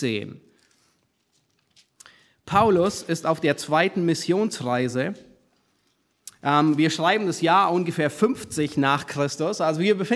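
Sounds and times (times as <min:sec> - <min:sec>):
speech: 0:00.0 - 0:00.5, 0:02.5 - 0:05.3, 0:06.4 - 0:10.1
pages of a book being turned: 0:00.7 - 0:02.0.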